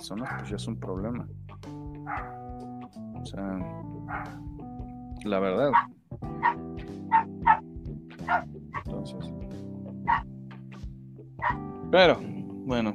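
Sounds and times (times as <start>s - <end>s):
speech: 0.0s - 4.6s, 5.2s - 7.6s, 8.3s - 9.4s, 11.9s - 12.9s
small dog barking in high-pitched yips: 0.2s - 0.5s, 2.1s - 2.4s, 4.1s - 4.4s, 5.7s - 7.6s, 8.2s - 8.9s, 10.1s - 10.3s, 11.4s - 11.6s.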